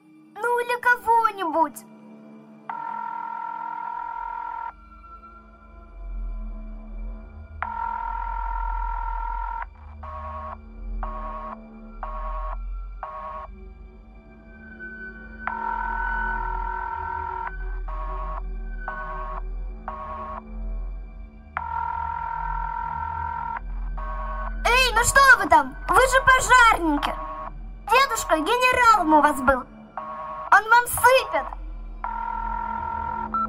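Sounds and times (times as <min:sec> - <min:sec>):
speech: 0:00.6 - 0:02.0, 0:29.0 - 0:29.7
long telephone ringing tones: 0:02.7 - 0:04.8, 0:07.6 - 0:11.5, 0:15.5 - 0:20.4, 0:21.6 - 0:24.4, 0:25.0 - 0:33.4.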